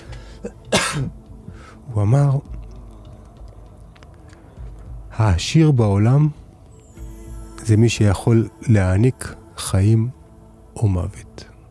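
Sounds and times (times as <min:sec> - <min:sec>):
quiet breaths: 0:00.0 - 0:00.7, 0:01.3 - 0:01.9, 0:02.7 - 0:05.2
harsh cough: 0:00.4 - 0:01.1
speech: 0:00.4 - 0:01.2, 0:01.9 - 0:02.5, 0:05.2 - 0:06.4, 0:07.7 - 0:10.2, 0:10.8 - 0:11.3.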